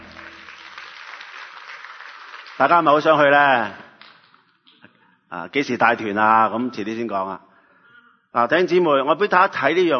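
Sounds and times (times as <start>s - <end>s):
church congregation applauding: 0.0s - 3.1s
speech: 2.6s - 3.8s, 5.3s - 7.5s, 8.3s - 9.9s.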